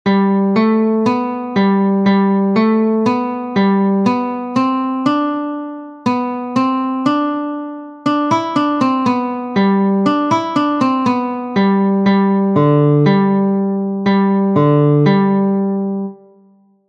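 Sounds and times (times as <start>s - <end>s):
guitar melody on several strings: 0.1s - 16.6s.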